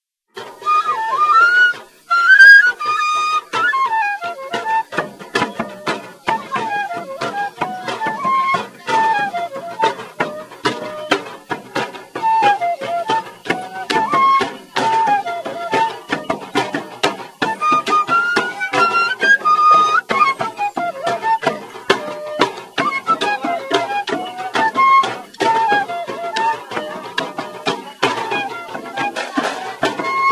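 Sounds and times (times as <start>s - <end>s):
drums: 0.3s - 30.3s
flute: 0.3s - 30.3s.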